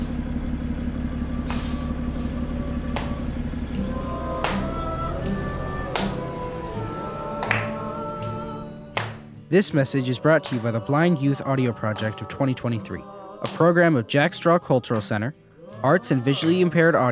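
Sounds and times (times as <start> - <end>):
city bus engine idling: 0.0 - 17.1
city bus air brakes hissing: 0.8 - 3.8
speech: 9.5 - 17.1.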